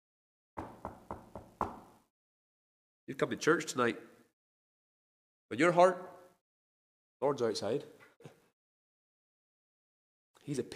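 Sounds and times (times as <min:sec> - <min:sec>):
firm knocking on a wooden door: 0:00.6 - 0:02.0
speech: 0:03.1 - 0:04.1, 0:05.5 - 0:06.1, 0:07.2 - 0:08.4, 0:10.4 - 0:10.7.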